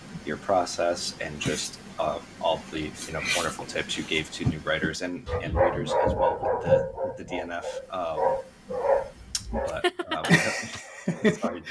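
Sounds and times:
faint noise: 0:00.0 - 0:11.6
speech: 0:00.2 - 0:11.6
dog barking: 0:05.3 - 0:09.8, 0:11.4 - 0:11.6
laughter: 0:09.5 - 0:11.6.

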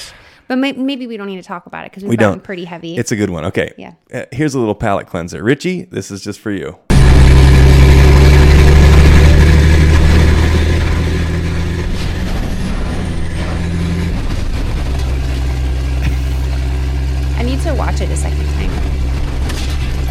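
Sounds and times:
speech: 0:00.5 - 0:06.9
semi truck engine rumble: 0:06.9 - 0:20.1.

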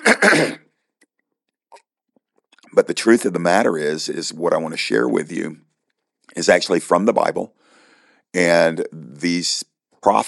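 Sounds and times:
preacher clearing his throat during a sermon: 0:00.0 - 0:00.8
speech: 0:00.2 - 0:00.6, 0:02.7 - 0:05.7, 0:06.4 - 0:07.6, 0:08.3 - 0:10.2.

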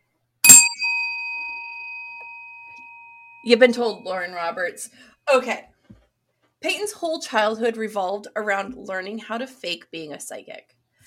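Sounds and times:
bell ringing: 0:00.4 - 0:04.6
speech: 0:03.4 - 0:05.7, 0:06.6 - 0:10.8.

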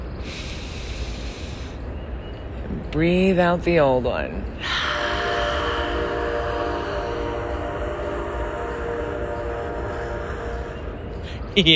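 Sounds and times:
heavy rumbling roar of a passing train: 0:00.0 - 0:11.7
speech: 0:02.9 - 0:04.7, 0:11.6 - 0:11.7
train whistle blowing: 0:04.6 - 0:11.6.

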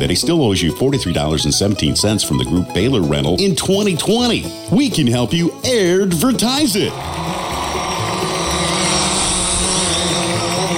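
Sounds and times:
speech: 0:00.0 - 0:07.8
drone motor buzzing: 0:06.9 - 0:10.7.

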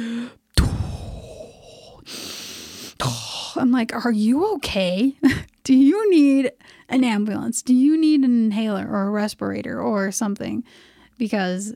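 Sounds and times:
voice imitating someone breathing loudly through the nose: 0:00.0 - 0:03.3
speech: 0:03.6 - 0:11.7.

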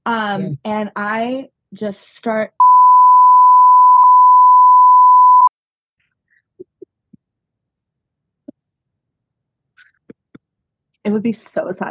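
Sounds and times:
speech: 0:00.0 - 0:02.6, 0:11.0 - 0:11.8
censor bleep tone: 0:02.6 - 0:05.5.

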